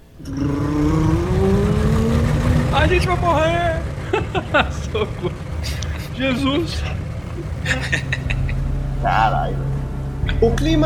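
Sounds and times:
boat engine starting and revving: 0.0s - 10.8s
speech: 0.2s - 0.6s, 2.9s - 3.9s, 4.5s - 8.2s, 9.0s - 9.7s, 10.3s - 10.8s
laughter: 2.8s - 8.6s.

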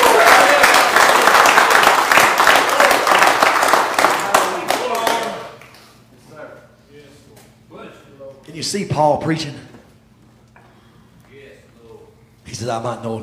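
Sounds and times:
audience applauding during a sermon: 0.0s - 5.8s
speech: 8.6s - 9.7s, 12.6s - 13.2s.

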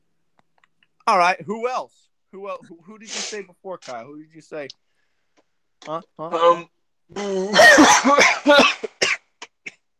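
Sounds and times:
speech: 1.1s - 4.8s, 5.8s - 8.9s
loud fit of sneezing: 3.1s - 3.4s, 7.2s - 9.6s
harsh rapid coughing: 7.2s - 9.9s.

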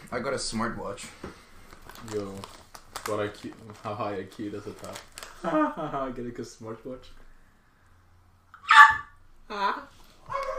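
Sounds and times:
speech: 0.1s - 1.4s, 2.0s - 7.2s
dog barking: 8.6s - 9.2s, 10.3s - 10.5s.

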